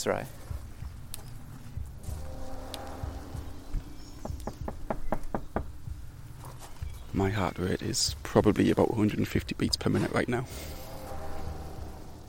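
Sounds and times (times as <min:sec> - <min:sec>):
speech: 0:00.0 - 0:00.4, 0:07.1 - 0:10.8
low outdoor rumble: 0:00.0 - 0:07.4, 0:08.0 - 0:12.2
sharp knocks on a front door: 0:04.2 - 0:06.0.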